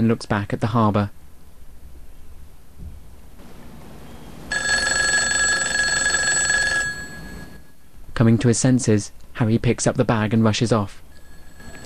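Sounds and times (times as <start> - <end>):
speech: 0.0 - 1.2, 8.2 - 11.0
faint hiss: 0.0 - 4.9, 7.0 - 11.8
telephone ringing in a phone booth: 4.5 - 7.8, 11.1 - 11.8.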